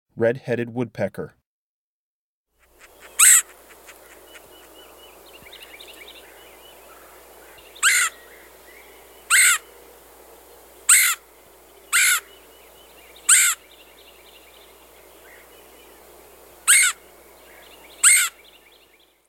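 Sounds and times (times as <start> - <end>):
Red-headed Woodpecker: 2.6 - 8.4, 9.3 - 9.7, 10.9 - 11.2, 11.9 - 14.7, 16.7 - 17.0, 17.8 - 18.7.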